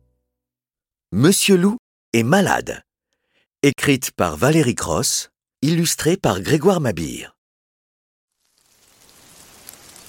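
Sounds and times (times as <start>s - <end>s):
speech: 1.1s - 2.8s, 3.6s - 7.4s
heavy rain falling in big drops: 8.3s - 10.0s.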